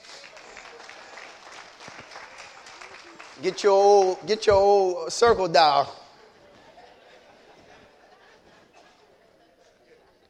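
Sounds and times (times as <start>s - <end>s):
faint crowd murmur: 0.0s - 4.2s, 4.8s - 10.2s
small audience clapping: 0.0s - 5.6s
laughter: 0.0s - 10.2s
speech: 3.4s - 6.0s.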